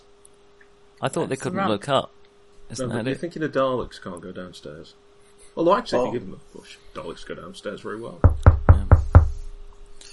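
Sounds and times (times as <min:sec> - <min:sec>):
speech: 0:01.0 - 0:09.1
knocking on a door: 0:08.2 - 0:09.6.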